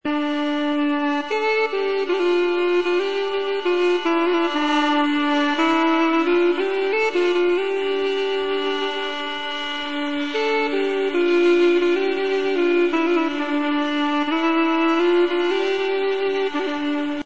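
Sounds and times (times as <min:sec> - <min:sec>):
Armenian duduk playing: 0:00.0 - 0:17.2.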